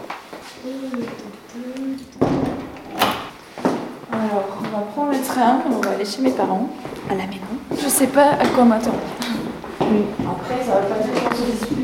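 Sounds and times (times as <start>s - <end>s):
speech: 0.6s - 2.4s, 4.8s - 9.2s, 9.9s - 11.8s
door creaking while being opened: 1.9s - 3.4s
solid door clunk: 2.2s - 3.4s.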